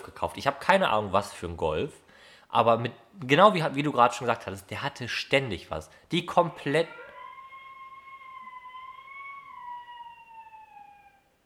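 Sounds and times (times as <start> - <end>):
speech: 0.2 - 7.0
young girl howling: 6.8 - 11.4.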